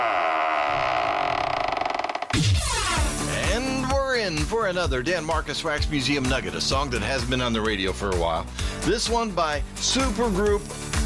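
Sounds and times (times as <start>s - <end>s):
heavy vault door creaking open: 0.0s - 3.2s
speech: 2.3s - 3.4s, 4.3s - 10.9s.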